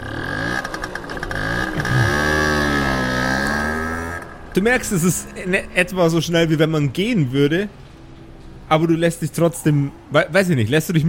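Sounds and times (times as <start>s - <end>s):
small motor scooter engine starting and driving off slowly: 0.0s - 5.7s
speech: 4.6s - 7.8s, 8.7s - 11.0s.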